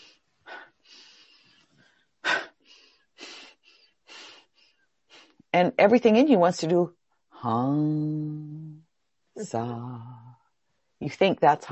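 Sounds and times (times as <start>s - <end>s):
person breathing rapidly and forcefully through the nose and mouth: 0.0s - 5.5s
speech: 5.5s - 8.8s, 9.4s - 10.4s, 11.0s - 11.7s.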